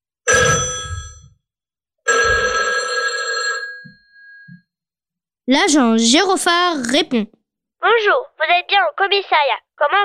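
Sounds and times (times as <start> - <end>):
telephone ringing with metallic bell trill: 0.3 - 1.4, 2.1 - 4.5
speech: 5.5 - 10.0.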